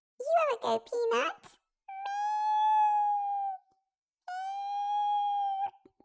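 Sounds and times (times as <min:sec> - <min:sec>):
speech: 0:00.5 - 0:01.6
child imitating a cat meowing: 0:01.9 - 0:03.6, 0:04.3 - 0:05.8.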